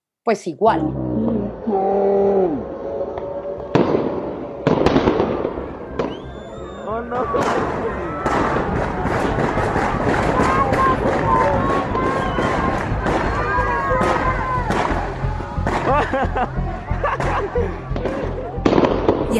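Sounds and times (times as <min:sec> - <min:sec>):
speech: 0:00.2 - 0:01.0
people's voices and crowd noise: 0:00.8 - 0:19.3
gunshots outdoors in the street: 0:03.7 - 0:06.3, 0:07.2 - 0:16.1, 0:17.2 - 0:19.3
laughter: 0:15.7 - 0:18.7.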